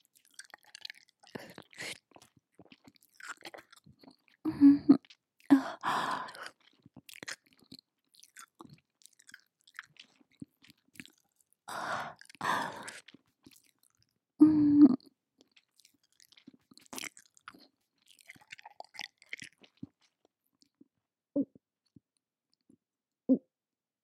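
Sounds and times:
soft wet chewing and squishy mouth sounds: 0.0s - 14.2s, 14.9s - 22.8s
brief hummed vocal tone: 4.5s - 5.8s, 14.4s - 15.0s.

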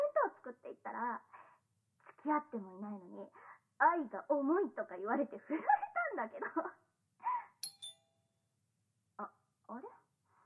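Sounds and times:
speech: 1.0s - 1.3s, 2.2s - 6.8s
electronic doorbell chime: 7.6s - 8.0s.

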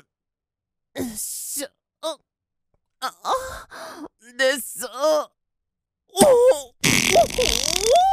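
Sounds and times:
speech: 1.1s - 2.3s
loud drawn-out fart: 6.8s - 8.0s.

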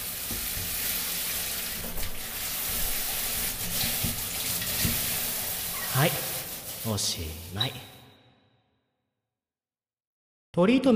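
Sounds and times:
running water rinsing shampoo out of hair: 0.0s - 8.0s
speech: 6.0s - 7.9s, 10.6s - 10.9s.

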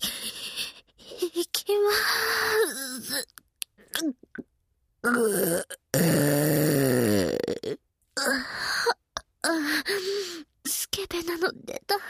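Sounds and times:
short breathy vocal noises: 0.0s - 10.5s
speech: 5.0s - 5.6s
long loud burp during a burping contest: 5.0s - 7.8s.

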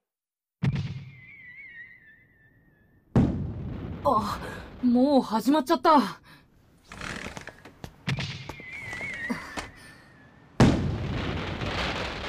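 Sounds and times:
whistling firework rocket trail rising: 0.9s - 2.9s, 8.4s - 10.8s
big booming firework explosion: 3.1s - 4.9s, 10.6s - 12.2s
speech: 4.0s - 6.2s
fireworks popping and cracking: 6.8s - 9.7s, 10.6s - 12.2s
rolling firework crackle: 6.8s - 9.7s, 11.1s - 12.2s.

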